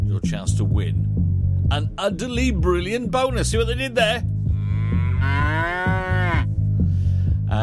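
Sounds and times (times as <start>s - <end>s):
speech: 0.2s - 4.3s
cow mooing: 4.6s - 6.5s.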